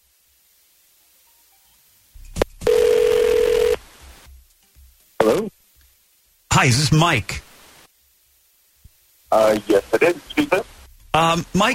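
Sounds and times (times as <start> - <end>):
steady electronic telephone ring: 2.7 - 3.8
speech: 5.4 - 5.6, 6.6 - 7.5, 9.3 - 11.7.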